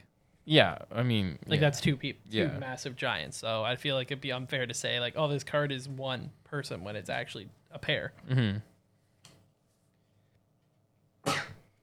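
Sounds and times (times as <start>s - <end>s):
speech: 0.5s - 8.7s
sneeze: 11.2s - 11.7s.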